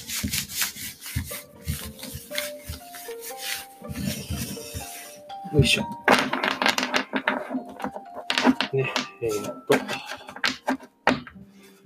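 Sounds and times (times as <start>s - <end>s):
tarot cards being shuffled by hand: 0.0s - 5.2s, 6.1s - 11.3s
speech: 5.5s - 6.0s, 8.8s - 10.1s.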